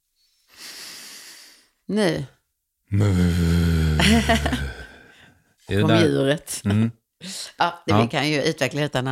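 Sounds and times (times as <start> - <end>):
deep breathy inhalation during breathing exercise: 0.2 - 1.8, 2.9 - 5.4
speech: 1.9 - 4.8, 5.7 - 9.1
laughter: 4.0 - 4.8.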